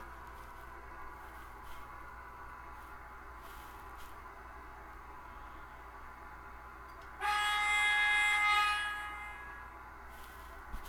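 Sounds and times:
train horn blast: 7.2 - 9.8.

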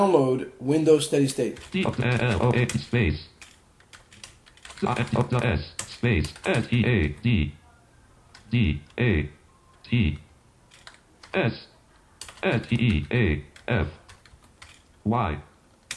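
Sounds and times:
speech: 0.0 - 3.3, 4.8 - 7.6, 8.5 - 10.2, 11.3 - 11.7, 12.4 - 14.0, 15.1 - 15.5
rapid typing on a computer keyboard: 1.6 - 7.2, 10.7 - 11.4, 12.1 - 14.9, 15.8 - 15.9.

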